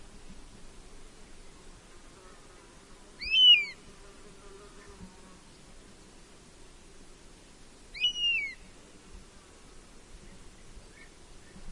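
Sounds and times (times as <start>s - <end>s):
faint background hiss: 0.0s - 11.7s
European honey buzzard short clear arched whistle call: 3.2s - 3.8s, 8.0s - 8.6s.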